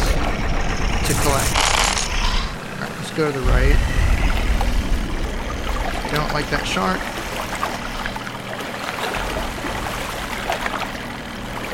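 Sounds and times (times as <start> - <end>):
low steady hum: 0.0 - 11.7
speech: 1.1 - 1.8, 3.2 - 4.0, 6.1 - 7.1
video game water splashing and trickling: 2.8 - 11.7.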